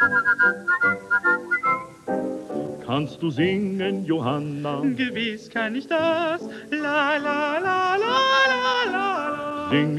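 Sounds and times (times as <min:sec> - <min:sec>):
person whistling a bright lilting tune: 0:00.0 - 0:02.0
speech: 0:00.1 - 0:01.0, 0:02.9 - 0:09.9.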